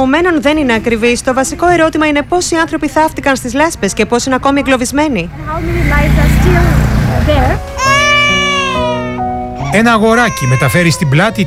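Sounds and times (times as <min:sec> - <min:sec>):
speech: 0:00.0 - 0:08.0, 0:09.7 - 0:11.4
busy rumbling noise: 0:00.0 - 0:09.6
baby crying loudly: 0:07.6 - 0:11.4.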